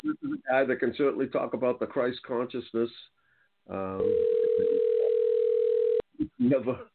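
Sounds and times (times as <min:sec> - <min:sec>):
speech: 0:00.5 - 0:04.8, 0:06.2 - 0:06.9
phone line ringing on an outgoing call: 0:04.0 - 0:06.0.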